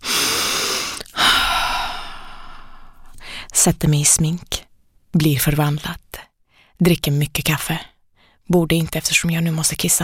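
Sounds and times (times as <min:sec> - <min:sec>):
deep breaths from a nervous performer in a dressing room: 0:00.0 - 0:03.5
speech: 0:03.6 - 0:04.6, 0:05.2 - 0:07.9, 0:08.5 - 0:10.0.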